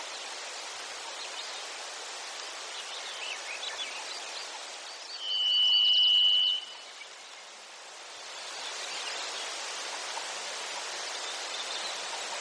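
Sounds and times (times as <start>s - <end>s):
rushing background hiss: 0.0s - 12.3s
Varied thrush singing in Denali, Alaska: 5.2s - 6.8s.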